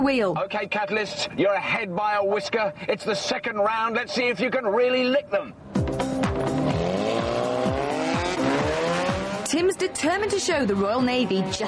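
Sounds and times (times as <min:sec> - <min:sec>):
speech: 0:00.0 - 0:06.6, 0:09.5 - 0:11.6
race car engine roaring through a chicane on a track: 0:05.6 - 0:11.6
race car gear changes: 0:05.8 - 0:11.6.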